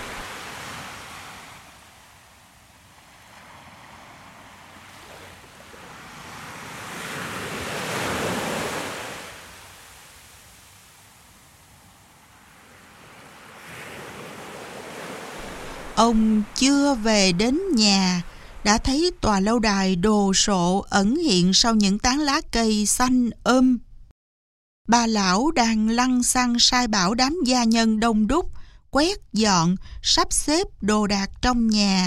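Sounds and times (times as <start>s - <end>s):
ocean waves surging and receding: 0.0s - 20.5s
speech: 16.0s - 23.8s, 24.9s - 32.0s.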